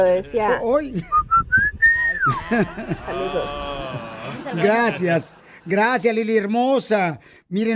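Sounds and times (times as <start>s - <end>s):
speech: 0.0s - 1.4s, 2.2s - 7.7s
family signature whistle: 1.1s - 2.4s
laughter: 2.1s - 6.6s.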